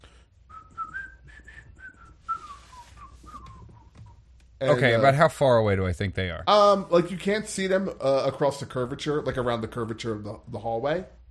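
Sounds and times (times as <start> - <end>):
person whistling a wavering tuneful melody in a hallway: 0.5 - 4.2
speech: 4.6 - 11.2.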